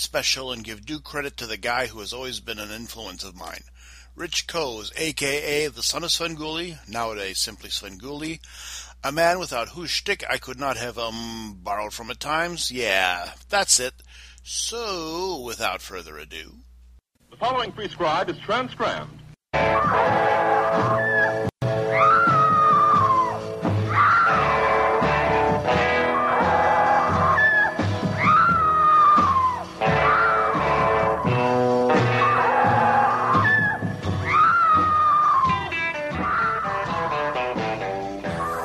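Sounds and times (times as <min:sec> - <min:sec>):
speech: 0:00.0 - 0:16.6, 0:17.3 - 0:21.0
dense steady guitar instrumental: 0:19.6 - 0:34.3, 0:35.4 - 0:38.5
high wailing screams: 0:19.6 - 0:37.3.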